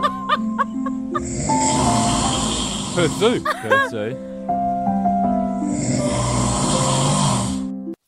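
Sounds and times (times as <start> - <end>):
laughter: 0.0 - 1.3, 3.0 - 4.1
person snoring loudly: 1.2 - 3.6, 5.6 - 7.8
speech: 3.0 - 4.6.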